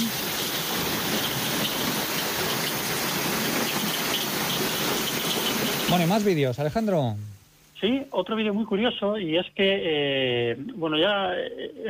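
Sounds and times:
heavy steady rain pouring down: 0.0 - 7.2
water rushing down street: 0.0 - 7.2
speech: 5.9 - 11.8.

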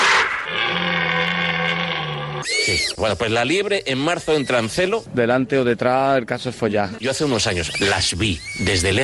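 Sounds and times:
rutting deer bellowing: 0.0 - 3.0
speech: 2.7 - 9.0.

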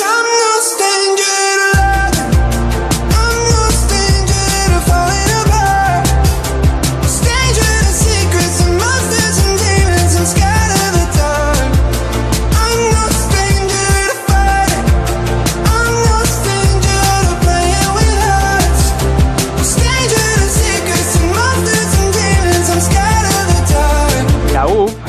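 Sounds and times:
pop song played on radio: 0.0 - 25.0.

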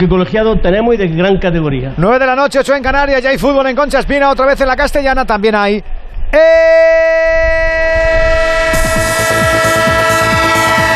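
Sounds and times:
speech: 0.0 - 8.5
train horn-like harmonic tone in a sound effect: 7.8 - 10.9.

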